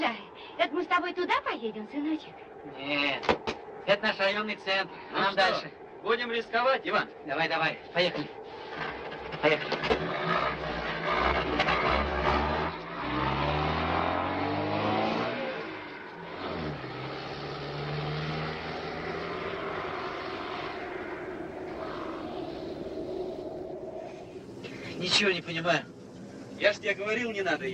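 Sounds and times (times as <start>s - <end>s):
speech: 1.0s - 8.4s, 9.4s - 9.8s, 25.2s - 25.9s, 26.6s - 27.7s
car engine revving hard without moving off: 8.4s - 27.7s.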